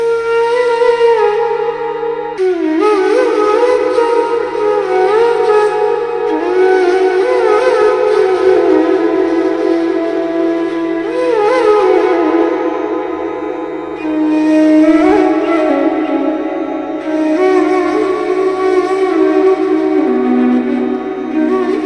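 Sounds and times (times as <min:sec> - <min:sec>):
flute: 0:00.0 - 0:21.8.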